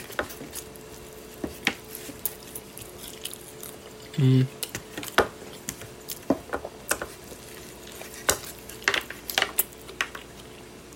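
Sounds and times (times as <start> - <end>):
biting and chewing a burrito: 0.0 - 10.9
faint steady hum: 0.0 - 10.9
speech: 4.2 - 4.6.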